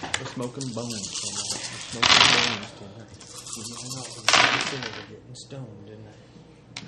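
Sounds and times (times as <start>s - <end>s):
speech: 0.4s - 6.4s
dice clattering on a table: 0.5s - 5.1s.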